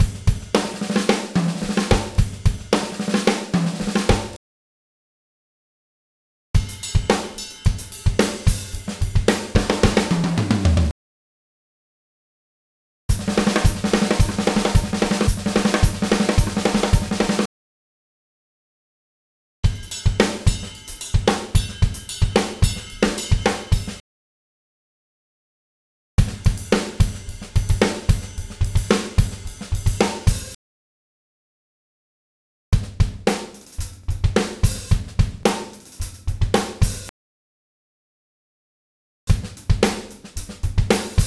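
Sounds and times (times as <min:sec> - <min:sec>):
funky rock drumbeat: 0:00.0 - 0:04.4, 0:06.6 - 0:10.9, 0:13.1 - 0:17.5, 0:19.7 - 0:24.0, 0:26.2 - 0:30.6, 0:32.8 - 0:37.1, 0:39.3 - 0:41.2.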